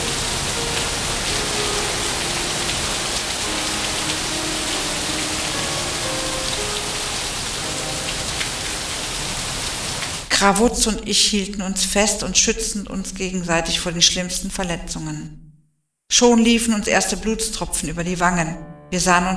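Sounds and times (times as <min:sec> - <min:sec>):
heavy lashing rain pouring: 0:00.0 - 0:10.3
speech: 0:10.4 - 0:15.5, 0:16.1 - 0:19.3.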